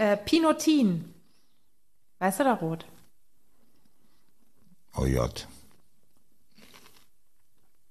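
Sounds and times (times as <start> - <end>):
speech: 0.0 - 1.1, 2.2 - 2.9, 5.0 - 5.5
person biting into crisp food: 6.1 - 7.8.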